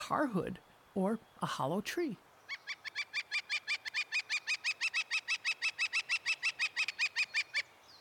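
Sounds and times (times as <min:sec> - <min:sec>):
speech: 0:00.1 - 0:02.3
Northern flicker calling a series of loud even notes: 0:02.4 - 0:08.0.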